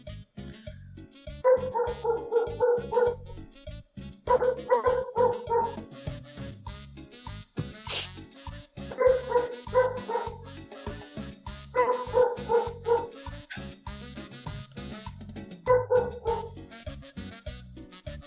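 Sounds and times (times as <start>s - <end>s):
dog barking: 1.5s - 3.3s, 4.3s - 5.9s, 8.9s - 10.5s, 11.7s - 13.7s, 15.7s - 16.5s.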